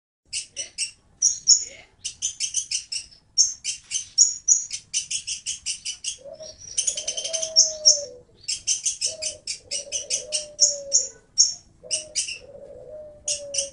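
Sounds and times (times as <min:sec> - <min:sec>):
oriental magpie-robin singing: 0:00.3 - 0:12.5, 0:13.2 - 0:13.7
low coos: 0:06.2 - 0:08.4, 0:09.1 - 0:13.7.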